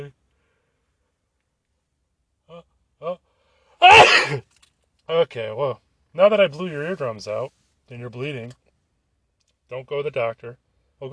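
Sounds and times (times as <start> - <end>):
speech: 2.5 - 3.2, 3.8 - 4.5, 5.1 - 8.6, 9.7 - 11.1
single loud sneeze: 3.8 - 4.5.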